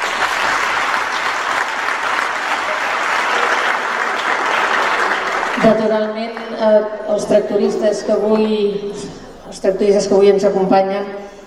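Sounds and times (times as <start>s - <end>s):
crowd applause for carnival groups: 0.0s - 6.6s
speech: 5.6s - 11.2s.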